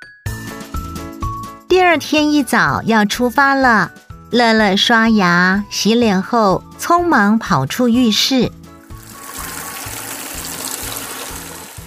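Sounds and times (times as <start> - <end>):
speech: 1.7 - 8.6
water running from a bathroom tap left not fully closed: 8.7 - 11.8.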